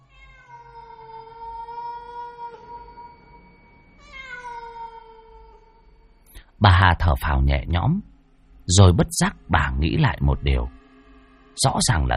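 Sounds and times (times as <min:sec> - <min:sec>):
household pet cat meowing: 0:00.0 - 0:03.4, 0:04.0 - 0:06.0
speech: 0:06.6 - 0:08.1, 0:08.7 - 0:10.8, 0:11.6 - 0:12.1.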